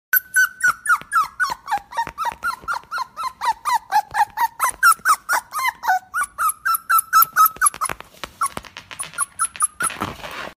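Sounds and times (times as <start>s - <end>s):
puppy crying: 0.2s - 10.2s.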